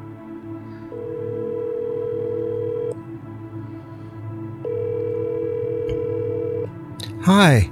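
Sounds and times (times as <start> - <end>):
telephone ringback tone from an iPhone call: 0.9 - 2.9, 4.6 - 6.7
speech: 7.2 - 7.7.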